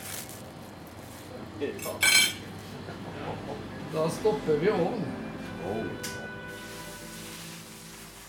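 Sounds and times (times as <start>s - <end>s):
speech: 1.6s - 6.2s
silverware clinking and rattling as it is taken out: 1.8s - 2.4s.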